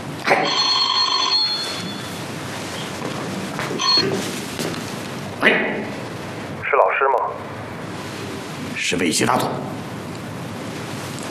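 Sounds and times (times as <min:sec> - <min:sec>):
low noise: 0:00.0 - 0:11.3
telephone bell ringing: 0:00.3 - 0:02.3, 0:03.8 - 0:04.2
speech: 0:08.9 - 0:09.8.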